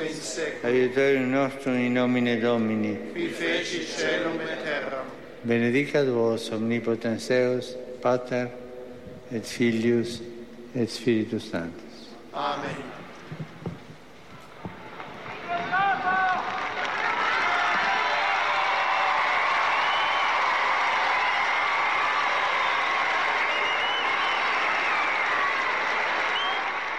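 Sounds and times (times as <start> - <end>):
speech: 0.4 - 8.6, 9.3 - 11.8, 12.4 - 13.4
large crowd of pilgrims applauding: 14.6 - 26.9
whistles from crowd of pilgrims: 19.6 - 20.5, 22.4 - 26.9.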